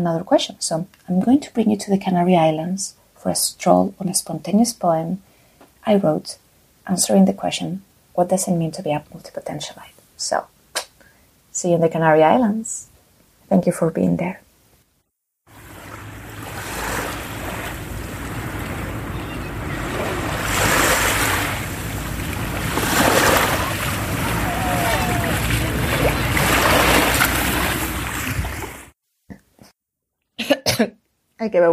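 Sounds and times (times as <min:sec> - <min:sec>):
speech: 0:00.0 - 0:10.5, 0:11.6 - 0:12.9, 0:13.5 - 0:14.4, 0:31.4 - 0:31.7
ocean waves splashing on the shore in the Canary Islands: 0:15.5 - 0:29.0
laughter: 0:23.3 - 0:27.9
person coughing from sea water: 0:30.4 - 0:31.0.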